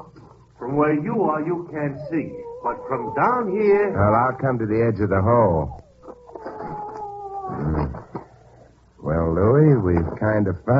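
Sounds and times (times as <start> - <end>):
speech: 0.0 - 5.8, 9.1 - 10.7
dog howling: 1.4 - 8.3.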